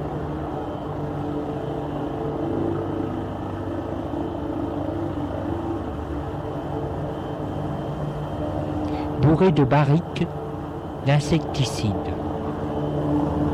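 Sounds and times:
helicopter flying overhead: 0.0 - 13.5
speech: 9.4 - 10.4, 11.0 - 12.1.

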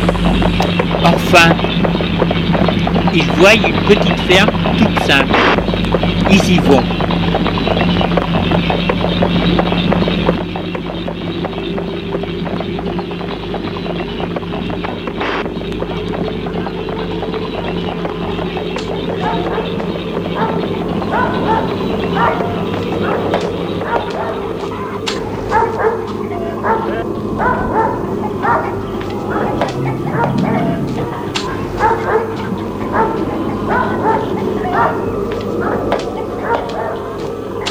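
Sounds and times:
low rumble: 0.0 - 37.6
speech: 1.3 - 1.7, 3.1 - 7.3
dog barking: 19.1 - 37.6.

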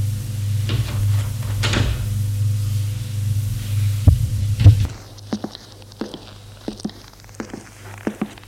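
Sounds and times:
steady low hum: 0.0 - 8.4
door opening with solid clunks: 0.6 - 2.2.

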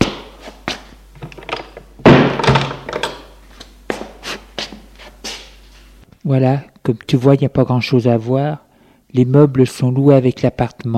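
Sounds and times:
door swinging shut with a solid thunk: 1.2 - 3.2
speech: 6.3 - 10.9.

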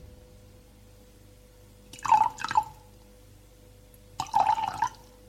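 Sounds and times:
water being poured into a glass from a carafe: 2.0 - 2.8, 4.2 - 5.1.

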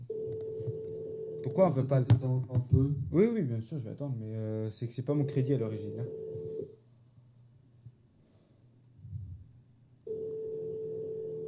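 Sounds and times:
quiet low hum: 0.0 - 11.4
telephone line busy tone after call hung up: 0.1 - 1.6, 5.2 - 6.7, 10.1 - 11.4
speech: 1.4 - 6.4.

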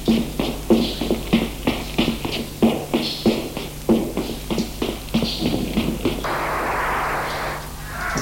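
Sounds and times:
heavy running footsteps: 0.0 - 6.3
brief burst of rough, broad noise: 6.2 - 8.2.

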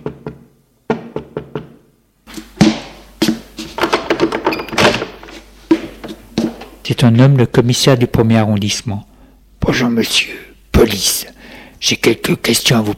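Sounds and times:
sharp knocks on a door: 0.0 - 1.8
clattering and movement: 0.9 - 6.8
speech: 6.9 - 12.9.

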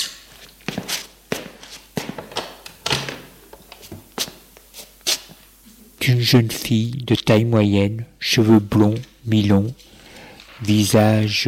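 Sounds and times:
man's footsteps on a hard floor: 0.0 - 5.8
speech: 6.1 - 9.9, 10.6 - 11.4.

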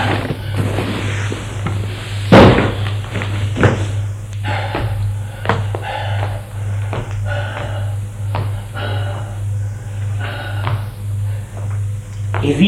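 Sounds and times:
steady low hum: 0.0 - 12.6
heavy Louis XV chest of drawers dragged across a floor to block a door: 0.1 - 2.4.

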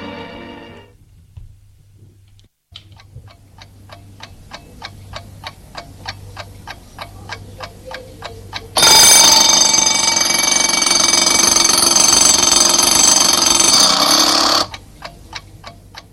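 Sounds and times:
clock ticking: 2.7 - 16.1
harsh alarm clock bell ringing: 8.8 - 14.7.

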